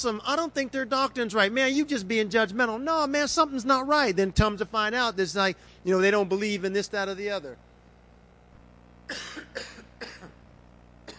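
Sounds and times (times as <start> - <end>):
speech: 0.0 - 7.7, 9.1 - 9.7
person coughing harshly: 9.1 - 11.1.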